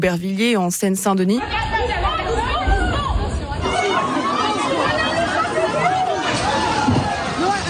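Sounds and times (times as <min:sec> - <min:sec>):
speech: 0:00.0 - 0:02.2
dense loud crowd chattering and shouting: 0:00.0 - 0:07.6.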